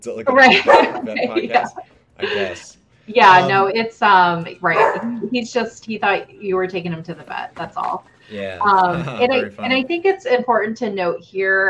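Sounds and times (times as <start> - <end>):
speech: 0.0 - 11.6
laughter: 0.3 - 3.6, 7.1 - 10.2
St. Bernard dog barking loudly: 0.5 - 1.0, 4.7 - 5.2.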